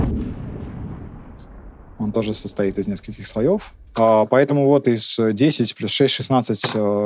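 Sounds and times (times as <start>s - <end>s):
tank cannon shot heard from long distance: 0.0s - 4.0s
long low rumble of a tank cannon shot: 0.0s - 4.4s
speech: 2.0s - 7.0s.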